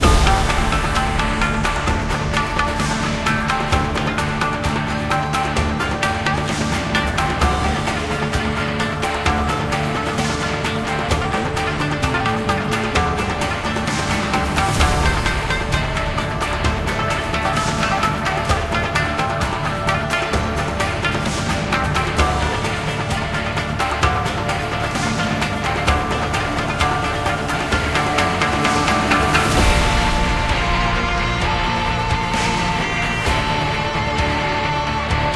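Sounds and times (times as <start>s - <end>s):
fight music: 0.0s - 35.3s.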